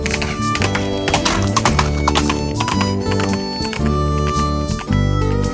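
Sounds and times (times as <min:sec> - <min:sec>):
horse hooves clip-clopping: 0:00.0 - 0:05.4.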